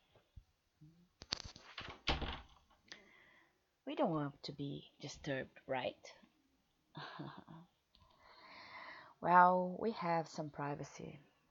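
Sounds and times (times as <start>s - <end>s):
door shutting with a solid thump: 1.8s - 2.5s
speech: 3.9s - 6.2s, 7.0s - 7.7s, 9.2s - 11.3s.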